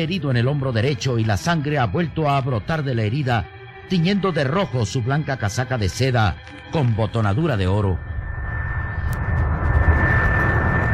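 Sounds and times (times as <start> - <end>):
speech: 0.0 - 8.1
airplane engine in flight: 4.6 - 10.9.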